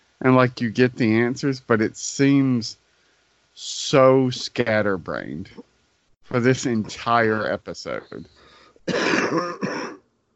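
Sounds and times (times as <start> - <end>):
speech: 0.2 - 2.8, 3.6 - 5.7, 6.3 - 9.8
cough into microphone: 8.8 - 10.1.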